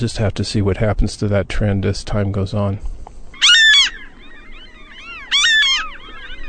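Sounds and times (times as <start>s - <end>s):
speech: 0.0s - 3.0s
ring-billed gulls giving harsh squealing calls in the early morning: 3.1s - 6.4s.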